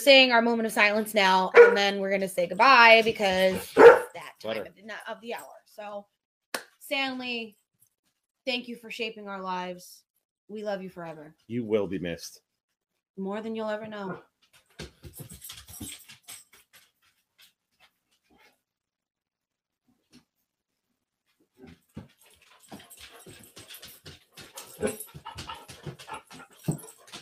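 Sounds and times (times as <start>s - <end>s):
speech: 0.0s - 6.2s, 6.9s - 7.6s, 8.5s - 12.4s, 13.2s - 14.3s
dog panting rapidly: 22.2s - 27.2s.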